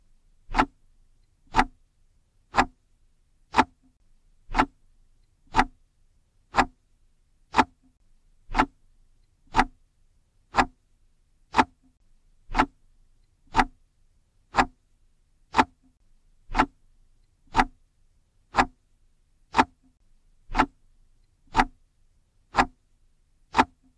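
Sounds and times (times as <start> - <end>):
clock ticking: 0.5 - 1.8, 2.5 - 2.8, 3.5 - 5.8, 6.5 - 6.8, 7.5 - 8.8, 9.5 - 9.8, 10.5 - 10.8, 11.5 - 12.8, 13.5 - 13.8, 14.5 - 14.8, 15.5 - 16.8, 17.4 - 17.8, 18.5 - 18.8, 19.5 - 19.9, 20.5 - 20.8, 21.5 - 21.8, 22.5 - 22.8, 23.5 - 23.9.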